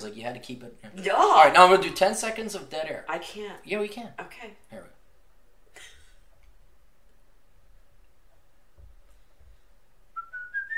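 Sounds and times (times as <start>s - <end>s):
speech: 0.0s - 4.7s
person whistling rising notes: 10.2s - 10.7s.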